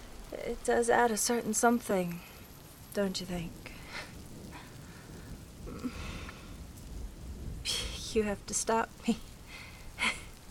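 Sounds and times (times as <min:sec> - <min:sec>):
rain falling on a hard rooftop: 0:00.0 - 0:10.5
speech: 0:00.5 - 0:02.3, 0:02.9 - 0:04.1, 0:08.1 - 0:09.3
low rumble: 0:02.1 - 0:10.5.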